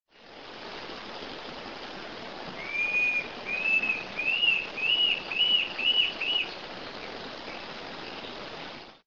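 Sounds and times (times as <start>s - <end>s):
Mackenziaena severa calling: 2.6s - 6.6s.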